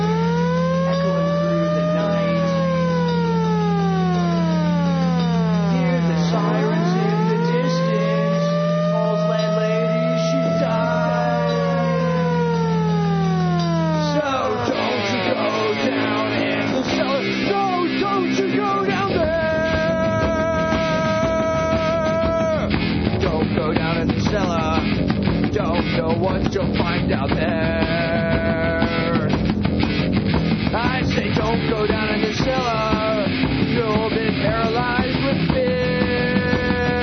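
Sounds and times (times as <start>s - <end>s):
sirens wailing: 0.0s - 26.4s, 27.3s - 37.0s
loud dense music: 0.0s - 37.0s.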